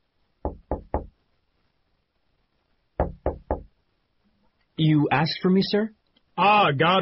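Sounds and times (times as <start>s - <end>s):
firm knocks on an office door: 0.4s - 1.2s, 3.0s - 3.8s
speech: 4.8s - 6.9s.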